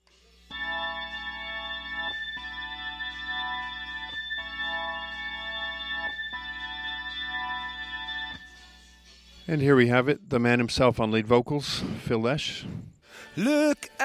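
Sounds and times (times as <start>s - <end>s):
Hammond organ sustained chords in a rock song: 0.5s - 9.0s
speech: 9.5s - 13.9s.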